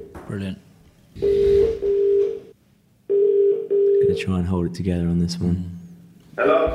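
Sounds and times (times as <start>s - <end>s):
speech: 0.3s - 1.5s, 4.2s - 5.8s, 6.4s - 6.7s
telephone ringing tone over a phone line to a business in London: 1.2s - 2.5s, 3.1s - 4.1s.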